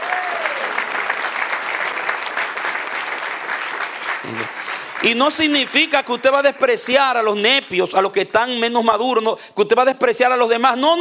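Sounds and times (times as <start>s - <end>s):
crowd applauding: 0.0s - 6.9s
speech: 4.2s - 10.9s.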